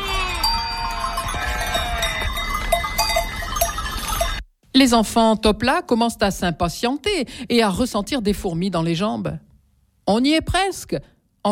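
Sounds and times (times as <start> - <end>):
sheep bell tinkling at night: 0.0 - 4.4
speech: 4.8 - 9.5, 10.1 - 11.5.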